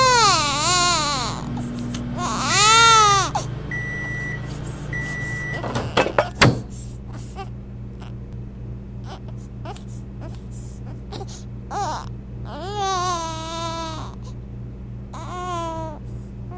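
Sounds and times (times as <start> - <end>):
baby crying: 0.0 - 3.5, 9.0 - 14.2, 15.1 - 16.5
appliance hum: 0.0 - 16.5.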